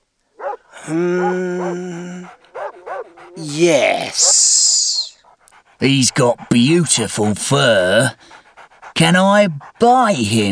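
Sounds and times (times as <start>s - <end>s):
dog barking: 0.4s - 3.4s
dog long drawn-out tonal cry: 0.4s - 4.5s
speech: 0.9s - 1.9s, 3.4s - 4.3s, 5.8s - 8.4s, 9.0s - 10.5s.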